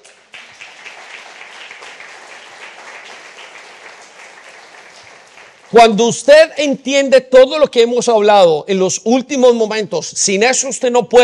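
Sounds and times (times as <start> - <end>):
crowd applauding: 0.0 - 6.3
speech: 5.7 - 11.2.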